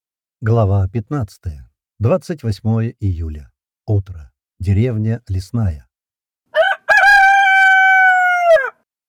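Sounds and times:
speech: 0:00.4 - 0:05.9
rooster crowing on a village morning: 0:06.5 - 0:08.9.

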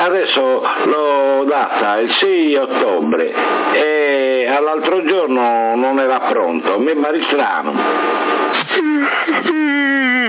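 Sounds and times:
speech: 0:00.0 - 0:10.2
person yawning over CB radio: 0:08.6 - 0:10.2.

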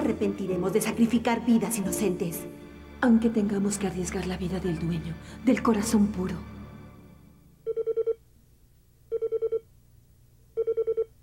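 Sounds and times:
speech: 0:00.2 - 0:06.5
telephone bell ringing: 0:07.6 - 0:08.2, 0:09.1 - 0:09.6, 0:10.6 - 0:11.1.

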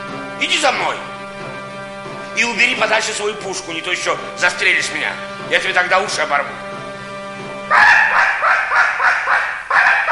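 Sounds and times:
speech: 0:00.4 - 0:01.1, 0:02.4 - 0:06.7, 0:07.7 - 0:08.4
hunting dog barking at hunters: 0:07.7 - 0:10.1.

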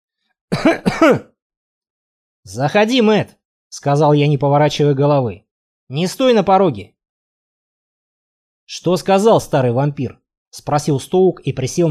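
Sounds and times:
person carefully clearing throat near a staircase: 0:00.5 - 0:01.4
speech: 0:00.6 - 0:01.3, 0:02.5 - 0:07.0, 0:08.7 - 0:11.8.

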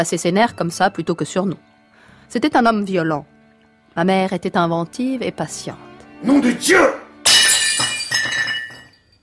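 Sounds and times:
speech: 0:00.0 - 0:01.7, 0:02.3 - 0:03.3, 0:04.0 - 0:07.0
plate smashing at a family dinner table: 0:07.2 - 0:09.0
crockery shards tinkling and clattering: 0:07.3 - 0:09.1.

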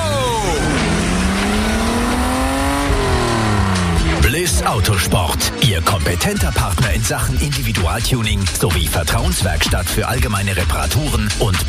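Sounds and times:
race car engine accelerating hard out of the pit lane on fresh tyres: 0:00.0 - 0:06.6
speech: 0:04.6 - 0:11.6.

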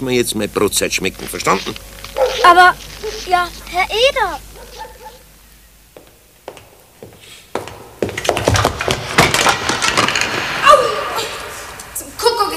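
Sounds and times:
speech: 0:00.0 - 0:04.5
knocks, splintery cracks and thuds: 0:08.1 - 0:10.6
wooden crates toppling over: 0:08.2 - 0:11.0.

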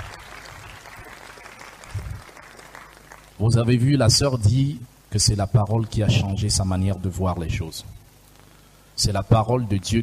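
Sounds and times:
church congregation applauding and cheering during a house-church service: 0:00.0 - 0:03.4
speech: 0:03.4 - 0:08.0, 0:09.0 - 0:10.0.

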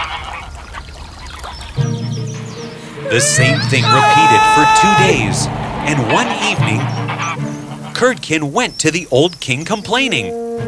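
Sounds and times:
geese honking: 0:00.0 - 0:08.2
speech: 0:03.1 - 0:07.4, 0:08.0 - 0:10.6.

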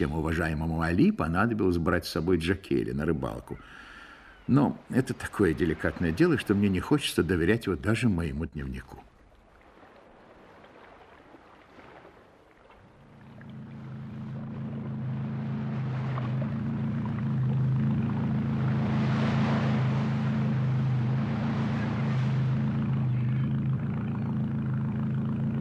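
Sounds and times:
speech: 0:00.0 - 0:03.9, 0:04.5 - 0:09.1
boat motor droning on the water: 0:00.0 - 0:25.6
broad wash of water noise: 0:04.4 - 0:08.0, 0:09.2 - 0:25.6.

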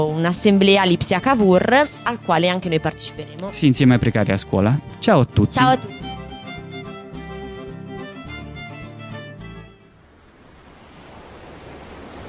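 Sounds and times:
speech: 0:00.0 - 0:06.1
music: 0:00.0 - 0:10.0
ocean waves breaking in surf: 0:09.9 - 0:12.2.

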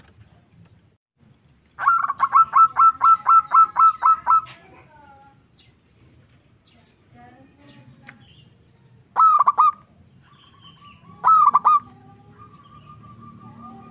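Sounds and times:
local-type zebra dove cooing: 0:01.8 - 0:04.6, 0:09.2 - 0:13.8.

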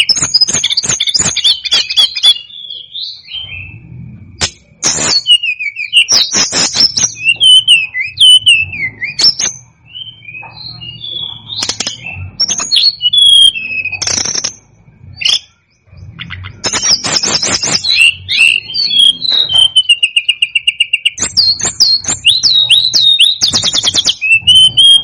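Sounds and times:
Tledekan gunung song with high whistled notes and clicking bursts: 0:00.0 - 0:25.0.

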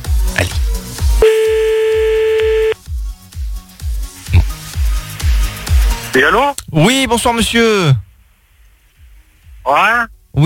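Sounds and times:
rhythmic thumping music beat: 0:00.0 - 0:06.1
ringback tone on an unanswered outgoing telephone call: 0:01.2 - 0:02.8
speech: 0:06.2 - 0:08.0, 0:09.6 - 0:10.4.

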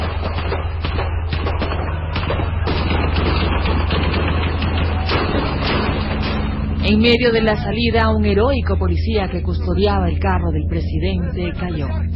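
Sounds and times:
sustained sniper gunfire from rooftop terraces at a vehicle: 0:00.0 - 0:07.2
constant low rumble: 0:00.0 - 0:12.1
speech: 0:06.9 - 0:12.1.

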